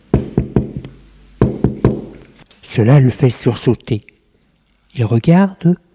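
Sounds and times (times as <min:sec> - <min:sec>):
knocking on an office door: 0:00.1 - 0:02.2
speech: 0:02.8 - 0:04.1, 0:04.9 - 0:05.8.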